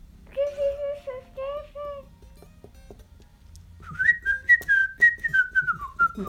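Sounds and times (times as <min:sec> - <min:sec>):
whistled signal tune of a helpers' squad calling for help: 0:03.8 - 0:06.2.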